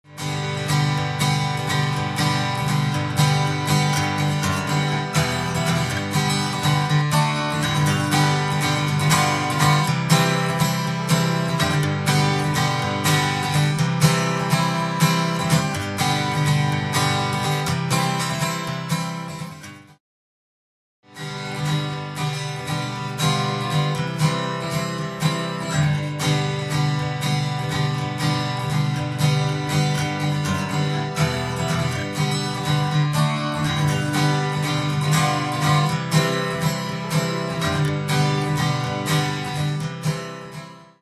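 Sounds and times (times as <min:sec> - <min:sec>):
acoustic instrument with delay effect: 0:00.0 - 0:20.0, 0:21.1 - 0:41.0.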